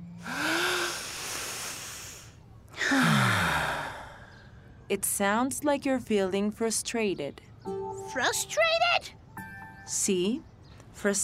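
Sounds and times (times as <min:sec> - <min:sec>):
person taking a deep breath with a forceful exhale: 0:00.2 - 0:04.5
speech: 0:04.9 - 0:09.2, 0:09.9 - 0:11.2.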